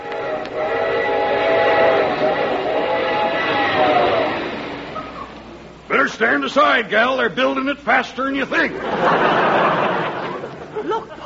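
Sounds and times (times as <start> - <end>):
tonal whistle-like whine of a passing train: 0.0 - 5.7
train roaring past on the rails: 0.0 - 10.6
speech: 6.0 - 9.4
laughter: 8.7 - 11.2.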